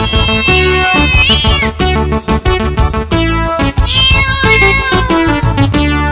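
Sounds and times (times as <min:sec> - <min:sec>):
female cat meowing: 0:00.0 - 0:01.7, 0:03.8 - 0:05.4
loud upbeat band music with steady bass: 0:00.0 - 0:06.1.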